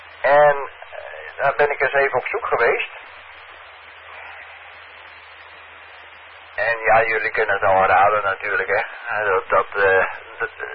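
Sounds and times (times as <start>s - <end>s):
military radio interference on the 70-centimetre band: 0.0s - 10.7s
speech: 1.4s - 3.1s, 6.6s - 10.7s.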